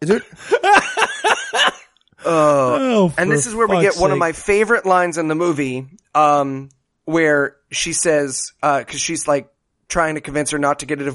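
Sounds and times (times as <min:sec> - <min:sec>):
speech: 0:00.0 - 0:00.8, 0:02.3 - 0:11.1
laughter: 0:00.1 - 0:02.7, 0:03.3 - 0:04.3
harsh raspy coughing fit: 0:00.3 - 0:01.9.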